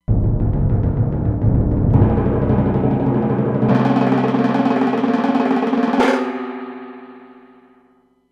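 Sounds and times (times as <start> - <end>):
timpani roll: 0.0 - 7.8.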